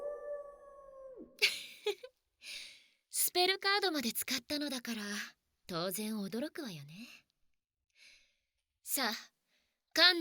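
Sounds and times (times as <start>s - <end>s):
wolf howling: 0.0s - 1.4s
speech: 3.4s - 7.2s, 8.9s - 9.3s, 10.0s - 10.1s.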